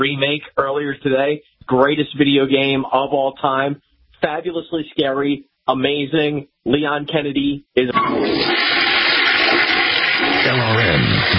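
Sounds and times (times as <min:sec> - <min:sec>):
speech: 0:00.0 - 0:08.8
toilet flushing with swirling water: 0:08.0 - 0:11.3.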